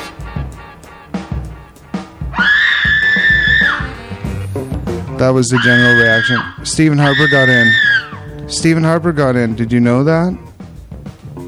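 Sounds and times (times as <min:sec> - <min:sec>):
rhythmic thumping beats: 0:00.0 - 0:11.4
woman screaming: 0:02.3 - 0:04.0, 0:05.5 - 0:08.2
speech: 0:05.2 - 0:07.9, 0:08.5 - 0:10.5.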